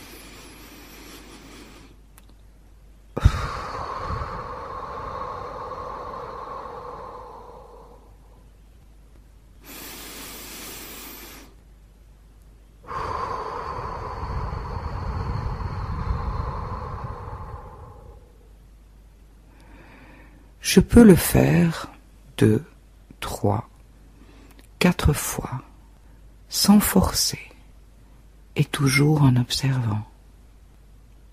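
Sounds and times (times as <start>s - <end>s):
slow deep breaths in through the nose and out through the mouth: 0.0s - 2.1s, 3.2s - 8.6s, 9.6s - 11.6s, 12.8s - 18.7s, 19.4s - 20.6s, 24.0s - 24.7s
speech: 20.7s - 22.7s, 23.3s - 23.7s, 24.8s - 25.7s, 26.5s - 27.5s, 28.6s - 30.1s.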